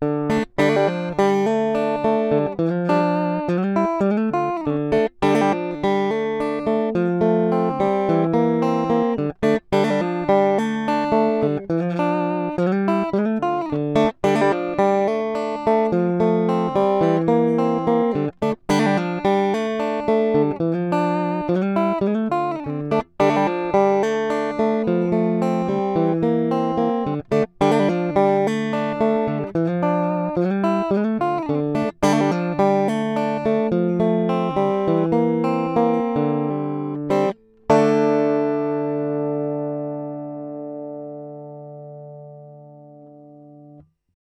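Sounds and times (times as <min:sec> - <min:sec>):
original electric guitar: 0:00.0 - 0:43.9.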